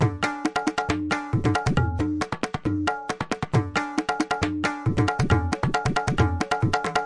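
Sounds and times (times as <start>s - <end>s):
tabla beat: 0.0s - 7.0s.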